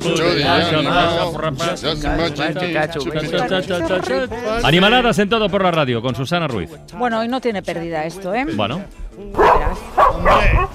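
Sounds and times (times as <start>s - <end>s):
speech: 0.0s - 10.7s
dog barking: 9.4s - 10.7s.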